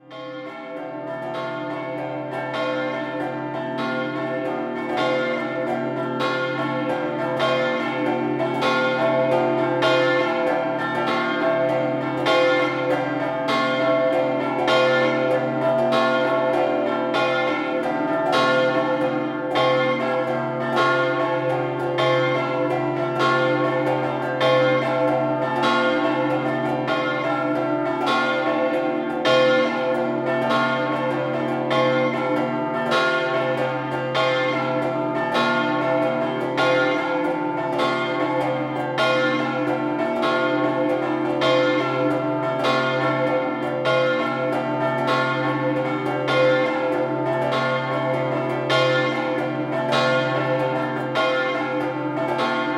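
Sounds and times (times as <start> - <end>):
bells ringing in Attimis: 0.1 - 52.7.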